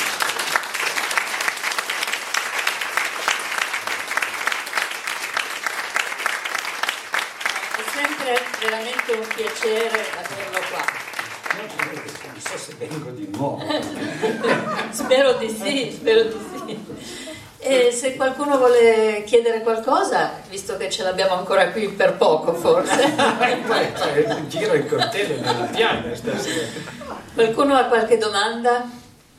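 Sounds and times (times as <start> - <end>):
audience applause in a room: 0.0 - 13.4
speech: 8.6 - 29.0
laughter: 13.4 - 17.3, 22.6 - 27.4.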